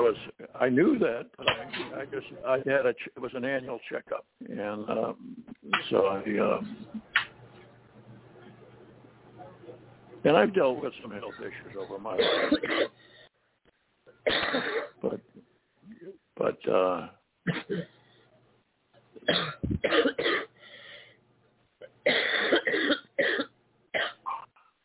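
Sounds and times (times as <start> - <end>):
speech: 0.0 - 7.0, 10.2 - 13.0, 14.3 - 15.3, 16.4 - 18.0, 19.3 - 20.5
person clearing throat: 12.2 - 12.9, 14.3 - 15.0, 17.5 - 18.0, 19.2 - 20.5, 22.1 - 24.5
person coughing: 12.2 - 13.0, 14.3 - 15.0, 19.2 - 20.5, 22.1 - 24.4.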